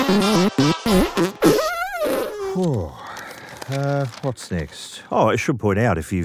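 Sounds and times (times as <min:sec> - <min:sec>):
fart noises: 0:00.0 - 0:02.7
speech: 0:03.7 - 0:06.2.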